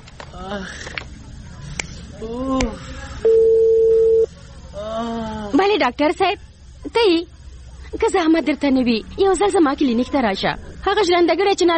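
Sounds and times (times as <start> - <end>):
speech: 0.4 - 1.1, 2.2 - 3.5, 5.8 - 7.3, 7.9 - 11.7
telephone tone as a call is dialed: 3.2 - 4.3.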